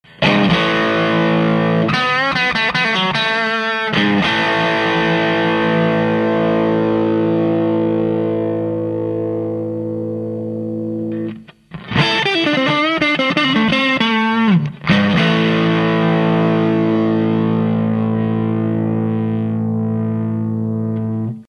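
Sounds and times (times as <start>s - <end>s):
electric guitar with drive on rear and front pickups: 0.0s - 21.4s.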